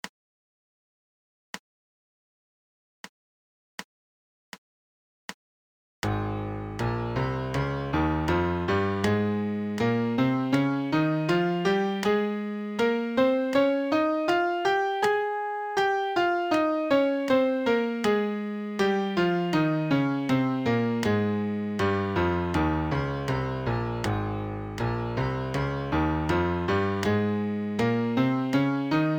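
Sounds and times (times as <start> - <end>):
MIDI A-flat major scale: 6.2 - 29.1.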